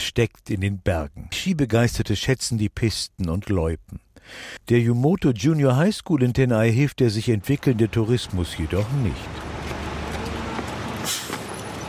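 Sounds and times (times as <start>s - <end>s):
speech: 0.1s - 9.5s
school bus engine rumble arriving at a school building in a mountain area: 7.2s - 11.8s.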